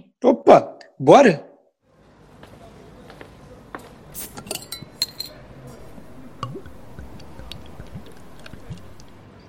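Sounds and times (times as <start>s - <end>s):
speech: 0.5s - 1.5s
glasses and dishes clinking in a bar: 4.4s - 9.2s
brief liquid squish: 5.6s - 9.3s.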